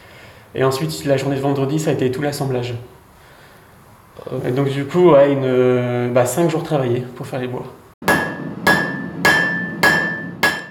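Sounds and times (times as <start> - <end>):
speech: 0.5 - 3.0, 4.3 - 7.8
hammer striking an anvil: 8.0 - 10.6.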